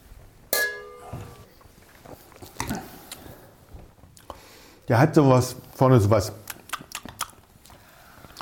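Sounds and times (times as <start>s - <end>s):
two wine glasses clinking: 0.5s - 1.5s
soft handling noises: 1.1s - 4.2s
quiet sipping: 1.4s - 4.9s, 6.4s - 8.4s
speech: 4.9s - 6.4s.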